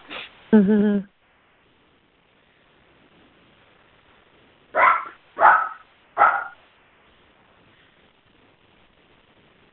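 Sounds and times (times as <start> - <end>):
dog barking: 4.8 - 6.6.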